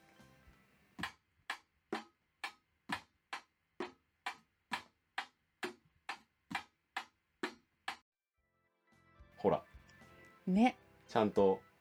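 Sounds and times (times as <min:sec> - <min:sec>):
beginner drumming a basic eight-beat rhythm on can lids, toy boxes and a trash can: 0:01.0 - 0:08.0
speech: 0:09.4 - 0:09.7, 0:10.4 - 0:11.6.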